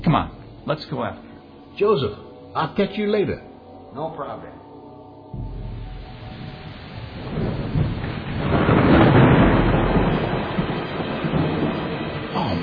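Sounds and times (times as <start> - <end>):
deep rumbling thunder from nearby lightning: 0.0 - 1.4, 5.4 - 12.6
speech: 0.1 - 4.6.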